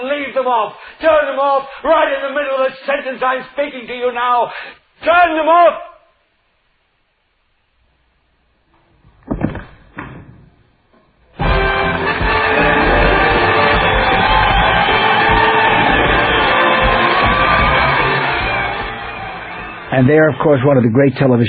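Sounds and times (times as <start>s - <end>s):
speech: 0.3s - 5.9s, 20.0s - 21.4s
brief thuds: 9.0s - 11.1s
large television studio audience applauding and cheering: 11.4s - 20.8s.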